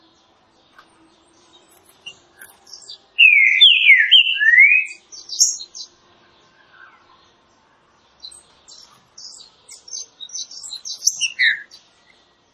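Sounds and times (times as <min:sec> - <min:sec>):
green-winged saltator singing a rich slurred whistled phrase in classic song style: 0:03.2 - 0:05.5.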